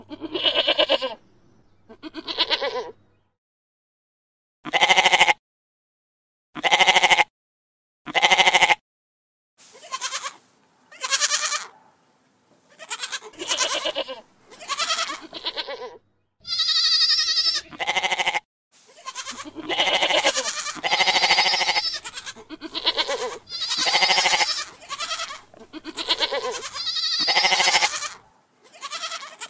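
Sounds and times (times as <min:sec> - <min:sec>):
many goats bleating continuously: 0:00.0 - 0:01.2, 0:01.9 - 0:03.0, 0:04.7 - 0:05.4, 0:06.6 - 0:07.2, 0:08.1 - 0:08.8, 0:09.7 - 0:11.7, 0:12.7 - 0:29.4.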